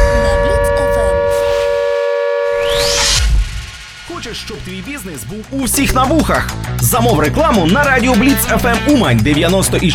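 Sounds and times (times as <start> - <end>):
air raid siren wailing: 0.0 - 5.6
speech: 4.3 - 9.9.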